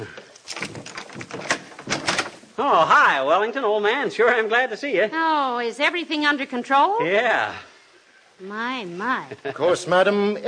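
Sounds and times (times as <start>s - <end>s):
speech: 0.0s - 0.8s, 2.6s - 7.7s, 8.4s - 10.4s
door being unlocked and opened: 0.5s - 2.4s.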